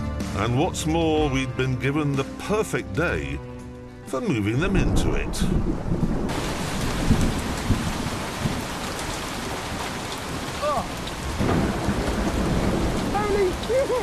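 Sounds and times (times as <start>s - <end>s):
speech: 0.4s - 3.5s, 4.1s - 6.6s
heavy rain: 4.1s - 14.0s
thunder rumbling: 4.5s - 14.0s.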